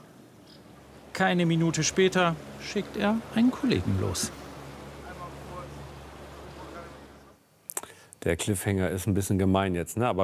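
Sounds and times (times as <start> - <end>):
rescue boat motor heading out: 0.0 - 7.4
rushing water: 0.0 - 7.5
wind: 0.0 - 10.2
speech: 1.2 - 4.4, 8.2 - 10.2.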